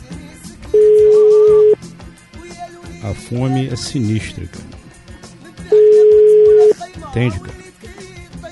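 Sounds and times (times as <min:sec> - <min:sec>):
steady telephone line tone while placing a call: 0:00.8 - 0:01.8, 0:05.7 - 0:06.8
speech: 0:03.0 - 0:04.8, 0:07.1 - 0:07.6.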